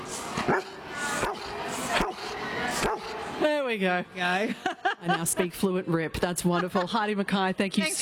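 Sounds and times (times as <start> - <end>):
dog barking: 0.5 - 3.1
speech: 3.7 - 8.0
laughter: 4.3 - 5.7, 6.3 - 7.2.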